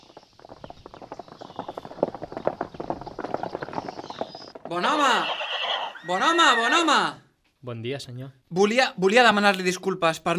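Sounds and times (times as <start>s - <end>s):
horse hooves clip-clopping while trotting: 0.0s - 6.9s
speech: 4.7s - 5.4s, 6.1s - 10.3s
horse whinnying neigh: 4.8s - 7.2s.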